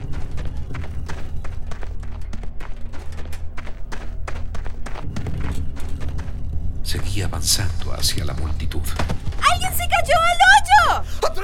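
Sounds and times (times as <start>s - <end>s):
boy running past on foot: 0.0s - 11.0s
speech: 7.1s - 11.4s.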